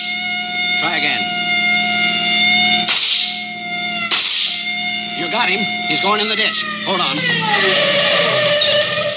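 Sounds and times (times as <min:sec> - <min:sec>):
police siren wailing: 0:00.0 - 0:09.1
speech: 0:00.8 - 0:01.4, 0:05.3 - 0:08.8
gunshots fired during a police car chase: 0:02.9 - 0:03.4, 0:04.1 - 0:04.6.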